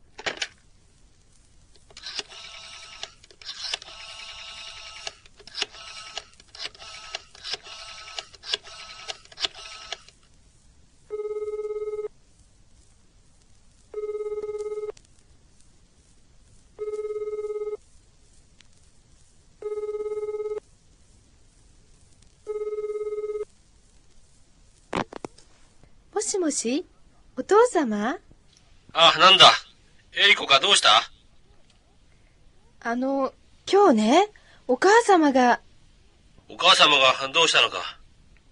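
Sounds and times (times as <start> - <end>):
phone line ringing: 1.9 - 10.1, 11.1 - 12.1, 14.0 - 15.0, 19.6 - 20.6, 22.5 - 23.5
speech: 26.5 - 28.3, 29.0 - 29.6, 30.2 - 31.1, 32.9 - 35.6, 36.6 - 38.0.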